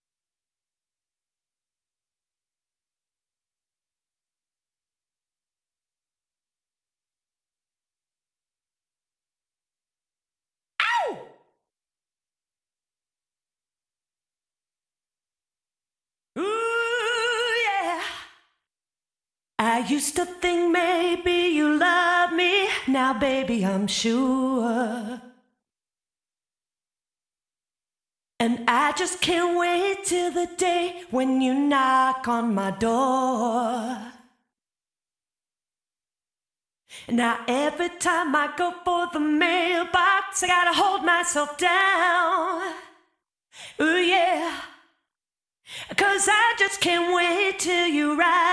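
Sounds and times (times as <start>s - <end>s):
person singing: 10.8s - 11.3s, 16.4s - 18.3s, 19.6s - 25.3s, 28.4s - 34.2s, 37.1s - 42.9s, 45.9s - 48.5s.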